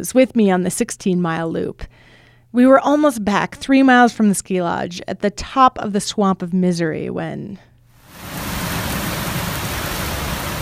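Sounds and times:
speech: 0:00.0 - 0:07.7
heavy downpour on a running trail: 0:08.0 - 0:10.6.

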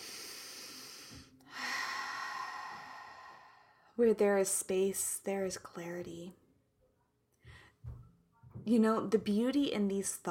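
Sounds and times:
deep breath in through the nose and out through the mouth: 0:00.0 - 0:04.0
speech: 0:04.0 - 0:06.4, 0:08.7 - 0:10.2.

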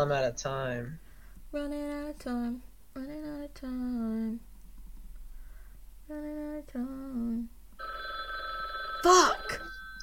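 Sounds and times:
speech: 0:00.0 - 0:04.5, 0:06.1 - 0:08.0, 0:09.0 - 0:09.6
faint low hum: 0:00.0 - 0:10.0
telephone ringing with steady electronic tones: 0:07.8 - 0:10.0.

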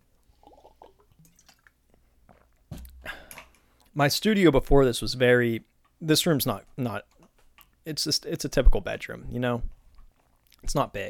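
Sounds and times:
person sipping water: 0:00.2 - 0:03.9
speech: 0:04.0 - 0:07.1, 0:07.9 - 0:09.8, 0:10.6 - 0:11.0.

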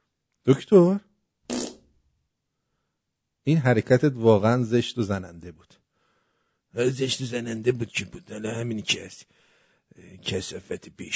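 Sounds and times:
speech: 0:00.4 - 0:01.1, 0:03.4 - 0:05.8, 0:06.8 - 0:11.1
loud raspy fart: 0:01.5 - 0:01.9.

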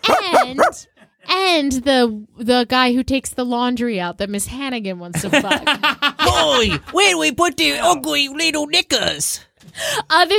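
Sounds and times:
person imitating a dog barking in a live stage musical performance: 0:00.0 - 0:00.9
speech: 0:01.5 - 0:10.3
laughter: 0:05.2 - 0:07.1.

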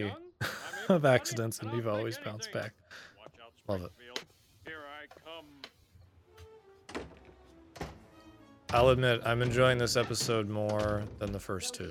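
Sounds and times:
speech: 0:00.0 - 0:03.1, 0:03.7 - 0:04.3, 0:08.7 - 0:11.8
laughter: 0:00.4 - 0:02.0
door slamming shut: 0:06.9 - 0:08.1, 0:08.7 - 0:11.5.

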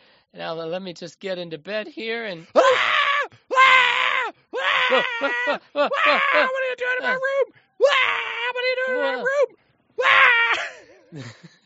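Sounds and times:
speech: 0:00.4 - 0:02.9, 0:04.9 - 0:10.2, 0:11.1 - 0:11.5
startled young woman screeching in a bedroom: 0:02.6 - 0:07.2, 0:07.8 - 0:10.6
laughter: 0:04.8 - 0:07.3, 0:10.6 - 0:11.6.

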